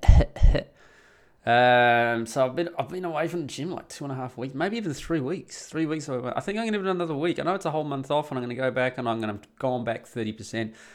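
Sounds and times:
person coughing: 0:00.0 - 0:00.8
speech: 0:00.5 - 0:10.9.

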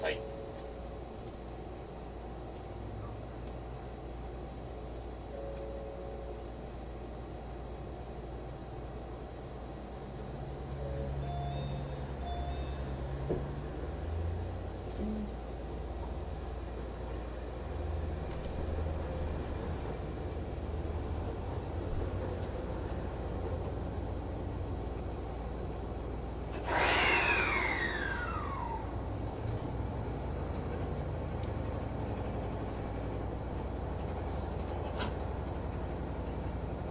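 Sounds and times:
faint hybrid train motor whine: 0:00.0 - 0:36.8
hybrid limited express train engine drone inside the Green Car: 0:00.0 - 0:36.8.

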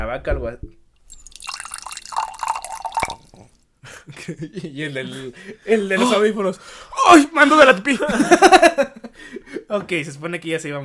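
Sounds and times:
speech: 0:00.0 - 0:01.2, 0:03.4 - 0:10.8
water pouring into a glass: 0:01.0 - 0:03.6
small clink of a glass: 0:01.1 - 0:03.6
laughter: 0:07.9 - 0:09.6.

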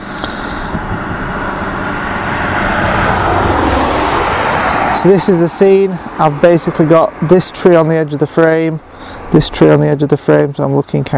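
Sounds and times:
car driving past: 0:00.0 - 0:07.4
speech: 0:05.0 - 0:11.1.

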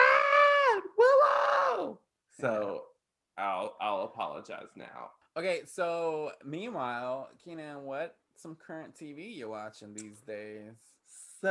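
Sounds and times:
person letting out a loud mock scream: 0:00.0 - 0:02.0
speech: 0:02.4 - 0:11.4.

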